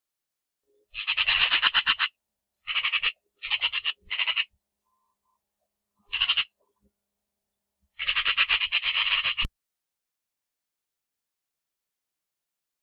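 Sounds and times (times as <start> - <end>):
Eurasian magpie chattering: 0.9 - 4.5, 6.0 - 6.6, 8.0 - 9.5.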